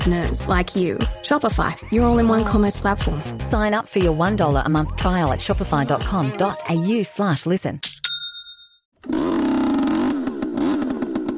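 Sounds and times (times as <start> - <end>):
speech: 0.0 - 7.9
sharp ding: 8.0 - 8.8
converted leaf blower small engine running and pumping carbon monoxide into rabbit burrows: 9.0 - 11.3.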